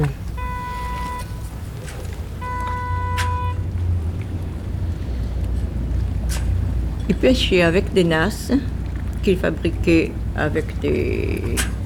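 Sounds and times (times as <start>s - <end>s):
long tonal horn-like blasts from a boat: 0.0s - 3.8s
wind rumbling across the microphone outdoors near water: 0.0s - 11.8s
speech: 7.1s - 11.8s.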